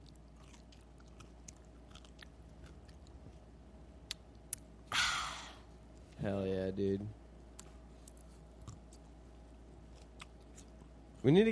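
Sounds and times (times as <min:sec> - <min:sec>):
wet chewing on pickle quarters: 0:00.0 - 0:04.8, 0:07.5 - 0:11.2
low steady hum: 0:00.0 - 0:11.5
speech: 0:06.2 - 0:07.2, 0:11.2 - 0:11.5.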